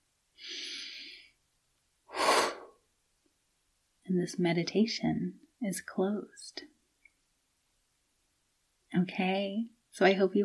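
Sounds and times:
deep cleansing breath inhale and exhale closing a meditation: 0:02.1 - 0:02.8
speech: 0:04.1 - 0:06.7, 0:08.9 - 0:10.4.

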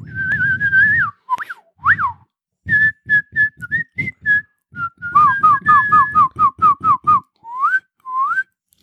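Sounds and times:
person whistling in imitation of creature calls: 0:00.0 - 0:08.6.

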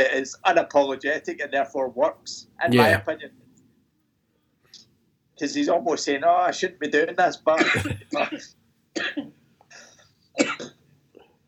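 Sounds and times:
speech: 0:00.0 - 0:03.4, 0:05.4 - 0:09.4
harsh coughs: 0:07.6 - 0:09.3, 0:10.4 - 0:10.8.

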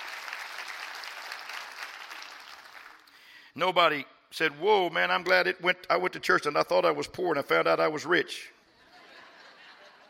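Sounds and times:
audience clapping hands: 0:00.0 - 0:03.1
speech: 0:03.6 - 0:08.6
laughter: 0:08.7 - 0:10.0.

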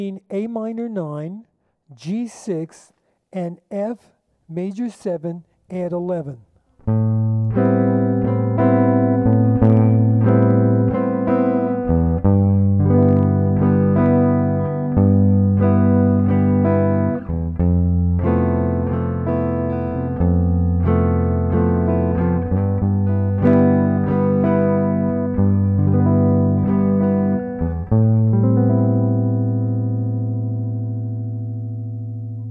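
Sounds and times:
speech: 0:00.0 - 0:07.0
guitar chords ringing with two high open strings droning: 0:06.8 - 0:32.4.

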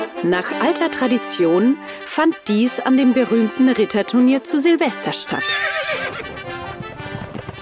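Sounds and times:
speech: 0:00.2 - 0:06.1
horse whinnying: 0:05.3 - 0:06.7
hooves of horses galloping in a jousting tournament: 0:05.3 - 0:07.6.

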